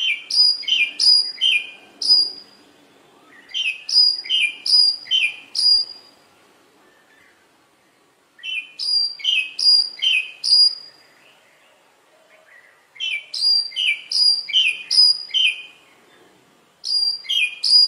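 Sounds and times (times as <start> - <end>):
Oriental magpie-robin song: 0.0 - 6.2, 8.4 - 17.8.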